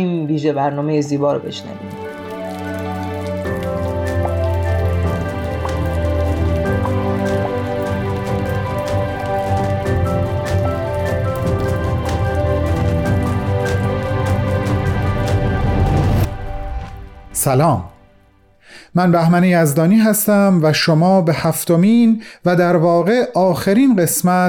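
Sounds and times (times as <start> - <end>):
speech: 0.0 - 2.0, 17.4 - 17.9, 18.9 - 24.4
sustained musical drone: 1.5 - 18.5
steady rain falling: 1.7 - 17.5.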